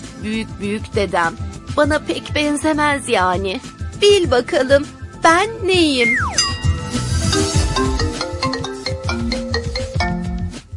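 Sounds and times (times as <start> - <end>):
speech: 0.2 - 7.5
mobile phone ringtone with looping electronic melody and thumping beat: 6.1 - 10.5.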